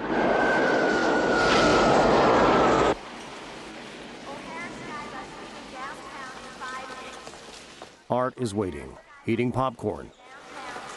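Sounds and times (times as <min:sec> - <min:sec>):
airplane landing at night: 0:00.0 - 0:07.8
speech: 0:08.2 - 0:10.2.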